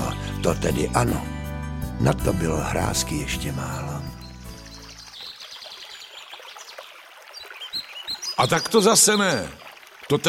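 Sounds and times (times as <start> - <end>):
speech: 0.4 - 1.3, 2.0 - 4.0, 8.4 - 10.2
brook water trickling into a small pond: 2.6 - 10.2.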